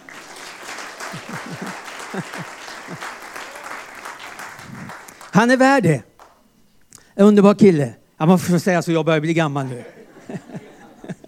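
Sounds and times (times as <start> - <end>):
laughter: 0.0 - 5.2, 9.6 - 11.2
people cheering: 0.0 - 5.4
audience applause: 0.0 - 5.5
speech: 1.1 - 3.2, 5.4 - 6.1, 7.2 - 10.6.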